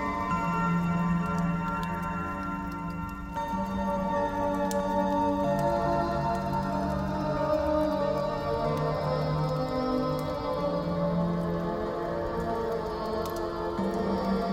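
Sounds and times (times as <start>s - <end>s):
calm piano music: 0.0s - 9.4s
campfire: 0.0s - 14.5s.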